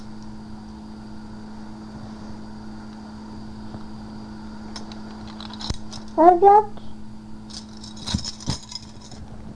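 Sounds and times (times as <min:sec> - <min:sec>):
keys jangling and clinking: 0:04.7 - 0:06.2, 0:07.5 - 0:09.2.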